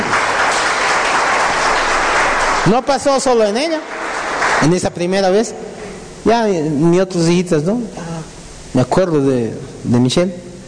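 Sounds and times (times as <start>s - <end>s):
congregation applauding at a religious gathering after a healing testimony: 0.0s - 5.6s
speech: 2.7s - 4.0s, 4.6s - 8.0s, 8.7s - 10.5s.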